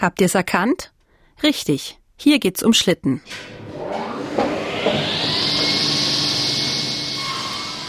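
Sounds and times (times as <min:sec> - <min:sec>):
speech: 0:00.0 - 0:04.0
circular saw cutting through wood: 0:03.3 - 0:07.8.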